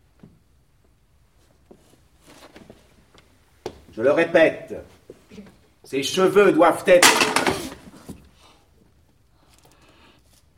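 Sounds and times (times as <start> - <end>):
speech: 4.0 - 7.2
pupil's writing slate dropping onto a hard floor and breaking: 7.0 - 8.0.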